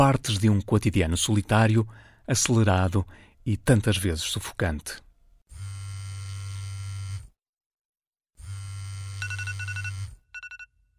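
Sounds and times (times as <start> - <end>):
speech: 0.0 - 5.0
alarm clock ringing at night: 9.2 - 10.7.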